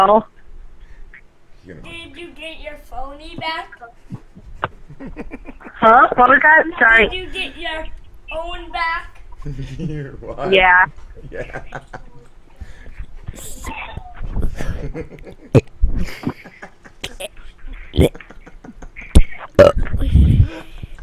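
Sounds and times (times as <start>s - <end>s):
speech: 0.0s - 0.3s, 1.7s - 4.0s, 5.0s - 12.1s, 13.3s - 18.4s, 19.6s - 21.0s
laughter: 4.6s - 6.1s, 11.2s - 12.3s, 14.5s - 17.2s, 18.0s - 19.2s
child burping into a microphone: 17.0s - 18.1s, 19.5s - 20.5s.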